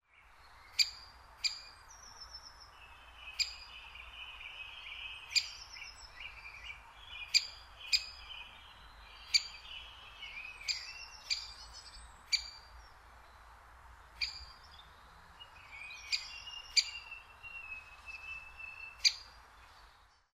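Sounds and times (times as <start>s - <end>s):
great spotted woodpecker: 0.7s - 1.8s, 3.3s - 4.0s, 4.8s - 12.7s, 14.2s - 14.6s, 15.9s - 19.3s.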